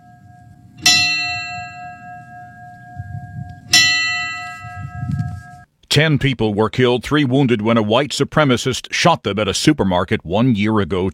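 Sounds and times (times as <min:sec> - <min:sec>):
church bell tolling: 0:00.0 - 0:05.7
faint low rumble: 0:00.0 - 0:05.7
speech: 0:06.0 - 0:11.1.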